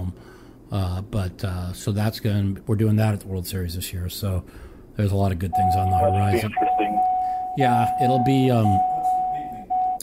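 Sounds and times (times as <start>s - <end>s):
speech: 0.7s - 8.9s
electronic warning beep inside a truck: 5.5s - 10.0s.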